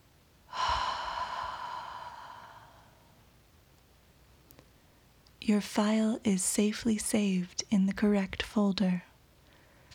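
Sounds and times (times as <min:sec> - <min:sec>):
slow airy breath: 0:00.5 - 0:03.2
speech: 0:05.5 - 0:09.1.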